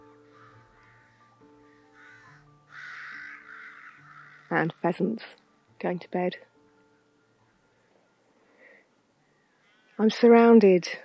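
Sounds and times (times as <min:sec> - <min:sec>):
rooks squabbling with harsh caws in a village churchyard: 0:00.2 - 0:04.7, 0:09.3 - 0:10.0
speech: 0:04.5 - 0:06.5, 0:10.0 - 0:11.0.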